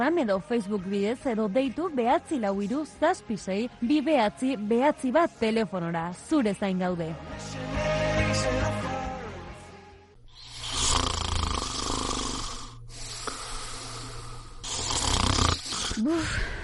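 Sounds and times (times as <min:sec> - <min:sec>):
speech: 0:00.0 - 0:08.8, 0:16.0 - 0:16.5
person snoring loudly: 0:10.3 - 0:16.6.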